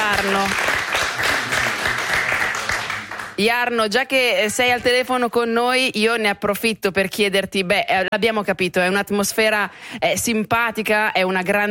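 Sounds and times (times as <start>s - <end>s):
applause of many hands clapping: 0.0s - 3.4s
speech: 0.2s - 0.7s, 3.4s - 11.6s.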